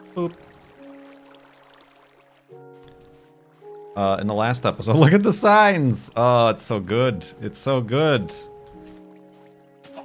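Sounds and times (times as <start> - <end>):
water being poured in, flowing: 0.0 - 3.6
speech: 0.2 - 0.6, 4.0 - 8.5.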